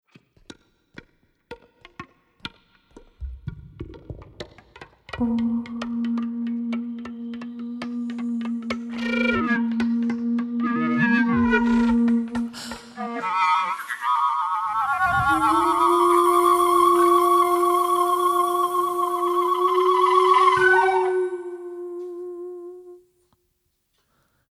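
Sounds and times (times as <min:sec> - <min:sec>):
vocal flute sound: 0:05.1 - 0:23.2.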